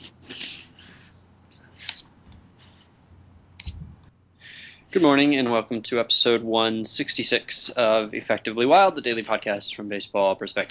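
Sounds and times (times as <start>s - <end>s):
low background hiss: 0.0s - 10.6s
cricket chirping: 0.8s - 4.0s
soft bumps and clicks: 3.6s - 4.1s
speech: 4.9s - 10.6s.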